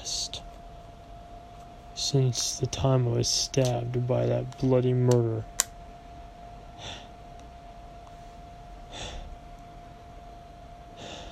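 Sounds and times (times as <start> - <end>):
steady low electrical hum: 0.0 - 11.2
speech: 2.1 - 5.6
person gasping for breath: 6.8 - 7.2, 8.9 - 9.4, 11.0 - 11.2.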